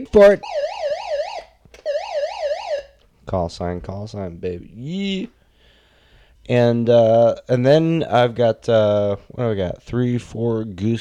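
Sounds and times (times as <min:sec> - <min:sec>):
speech: 0:00.0 - 0:00.8, 0:03.3 - 0:05.4, 0:06.4 - 0:11.0
electronic alarm warbling in up-and-down sweeps: 0:00.2 - 0:03.0.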